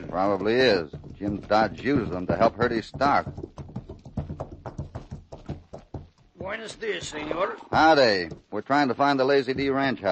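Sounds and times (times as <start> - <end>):
hooves of a horse ridden bareback clip-clopping: 0.0 - 10.1
speech: 0.1 - 3.5, 6.5 - 10.1.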